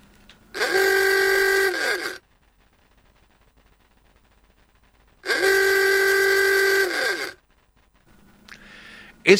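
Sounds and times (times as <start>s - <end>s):
old Ford Model T rubber-bulb horn honking: 0.5s - 2.2s, 5.2s - 7.4s.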